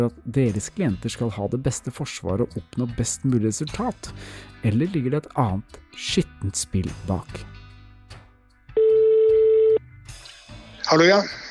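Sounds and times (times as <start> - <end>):
speech: 0.0 - 7.6, 10.9 - 11.4
telephone ringing tone: 8.8 - 9.8.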